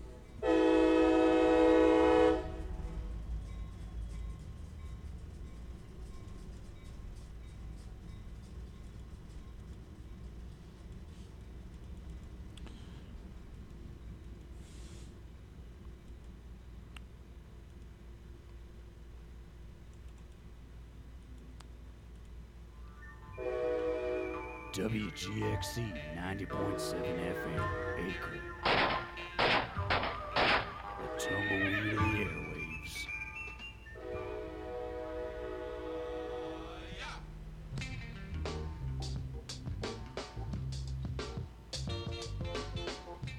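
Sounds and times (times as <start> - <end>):
train rolling past with a low rumble: 0.0 - 19.6, 22.6 - 43.3
train horn blaring: 0.4 - 3.1, 23.3 - 33.0, 34.0 - 37.0, 41.9 - 42.6
speech: 24.8 - 28.9.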